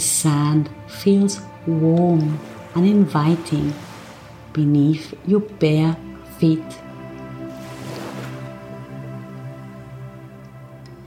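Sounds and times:
sustained humming musical drone: 0.0 - 11.0
speech: 0.2 - 3.9, 4.5 - 6.8
ocean waves gently crashing on sand: 2.1 - 4.6, 7.4 - 9.9.

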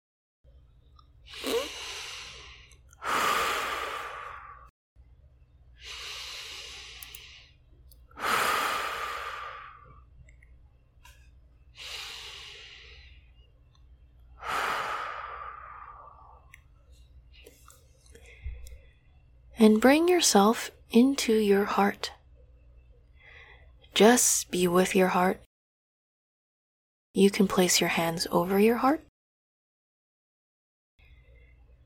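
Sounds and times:
deep breaths during a guided meditation: 1.3 - 4.7, 5.8 - 7.6, 8.2 - 10.1, 11.8 - 13.5, 14.4 - 16.5, 23.2 - 23.8
speech: 19.6 - 22.2, 24.0 - 25.5, 27.2 - 29.1.

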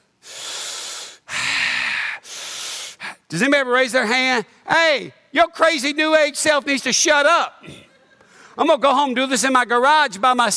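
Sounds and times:
slow deliberate breathing as in a yoga class: 0.2 - 3.3, 7.7 - 8.6
speech: 3.3 - 7.9, 8.6 - 10.5.

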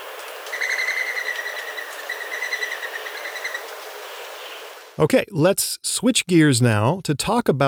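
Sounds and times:
mourning dove wings whistling during takeoff: 0.0 - 4.8
speech: 5.0 - 7.6.

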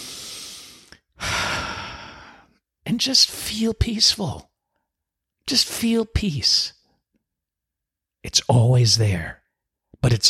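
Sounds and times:
person taking a deep breath during a relaxation exercise: 0.0 - 2.6
speech: 3.0 - 4.5, 5.5 - 6.8, 8.2 - 9.4, 10.0 - 10.2.

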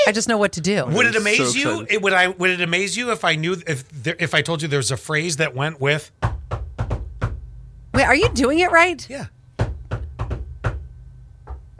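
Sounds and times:
speech: 0.0 - 6.7, 8.0 - 9.4
secret knock rhythm on a hard surface: 6.2 - 8.6, 9.6 - 11.7.

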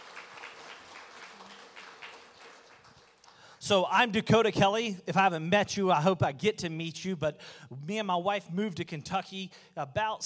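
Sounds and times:
audience applauding in a large room: 0.0 - 3.5
speech: 3.7 - 10.2.

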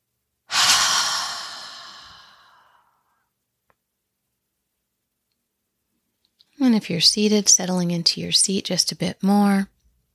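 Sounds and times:
slow exhale through an open mouth during a relaxation exercise: 0.5 - 2.9
speech: 6.7 - 9.7.

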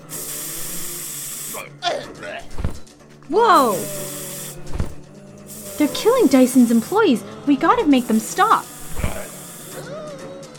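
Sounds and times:
spray gun spraying from a jar: 0.0 - 1.6, 3.5 - 10.0
speech: 1.6 - 4.2, 5.8 - 8.7.

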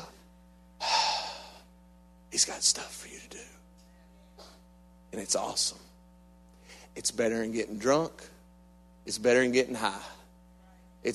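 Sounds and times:
many people inhaling deeply at once: 0.8 - 1.7
speech: 2.4 - 3.6, 5.1 - 5.9, 6.9 - 8.4, 9.0 - 10.2.

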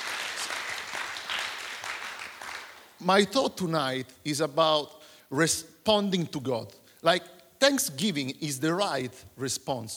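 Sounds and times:
audience applauding: 0.0 - 3.0
speech: 3.0 - 9.9.

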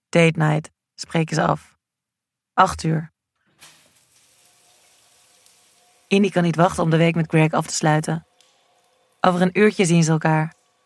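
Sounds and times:
speech: 0.1 - 1.7, 2.6 - 3.1, 6.1 - 8.3, 9.2 - 10.6
shower water running: 3.5 - 10.8.

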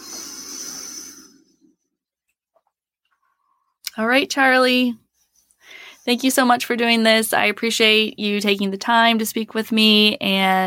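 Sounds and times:
deep slow exhale during a breathing exercise: 0.0 - 1.8
speech: 4.0 - 5.0, 6.0 - 10.6.

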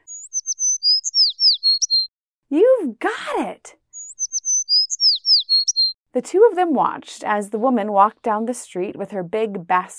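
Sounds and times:
small bird tweeting: 0.0 - 2.1, 3.9 - 6.0
speech: 2.5 - 3.8, 6.2 - 9.9.

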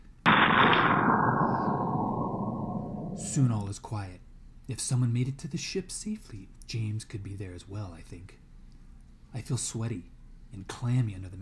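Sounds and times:
cannon firing: 0.2 - 3.6
cannonball crashing into tree with crackling rumbling roar: 0.2 - 3.6
speech: 3.4 - 8.4, 9.3 - 11.4.

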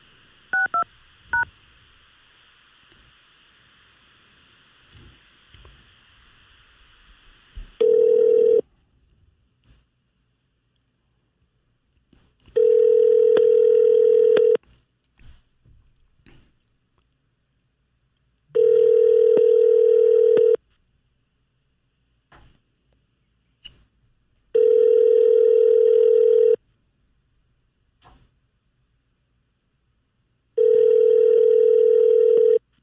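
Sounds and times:
telephone tone during outgoing call: 7.8 - 8.6, 12.6 - 14.6, 18.6 - 20.6, 24.6 - 26.6, 30.6 - 32.6.

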